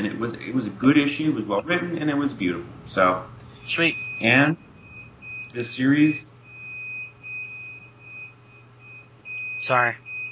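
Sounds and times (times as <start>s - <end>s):
speech: 0.0s - 4.6s, 5.5s - 6.3s, 9.6s - 10.1s
low hum: 0.0s - 10.2s
laundry machine beeping when its cycle is done: 3.0s - 10.2s.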